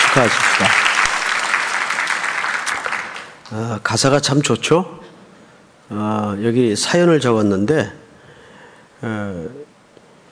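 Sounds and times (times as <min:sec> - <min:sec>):
church congregation applauding: 0:00.0 - 0:03.6
speech: 0:00.2 - 0:00.9, 0:03.5 - 0:05.0, 0:05.9 - 0:08.0, 0:09.0 - 0:09.7.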